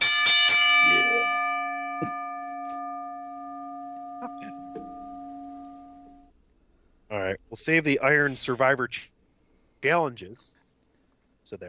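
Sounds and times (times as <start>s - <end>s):
bell struck and ringing: 0.0s - 6.3s
speech: 2.0s - 2.2s, 7.2s - 9.1s, 9.8s - 10.6s, 11.5s - 11.6s.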